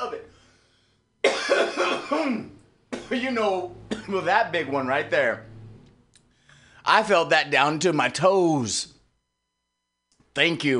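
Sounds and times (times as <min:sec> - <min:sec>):
person coughing harshly: 0:01.2 - 0:03.3, 0:03.9 - 0:04.3
speech: 0:02.1 - 0:05.5, 0:06.9 - 0:09.0, 0:10.4 - 0:10.7.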